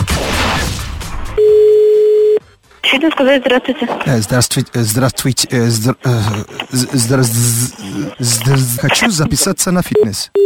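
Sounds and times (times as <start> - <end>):
telephone dial tone while placing a call: 1.4 - 2.4
speech: 2.9 - 10.4.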